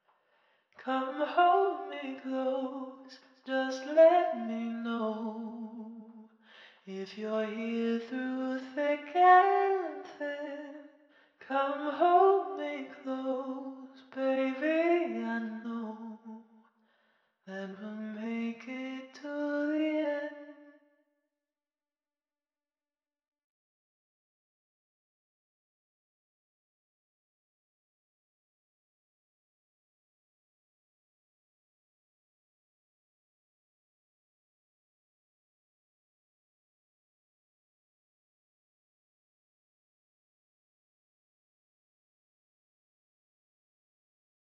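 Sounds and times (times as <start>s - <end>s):
vocals in G minor: 0.7s - 16.5s, 17.4s - 20.8s.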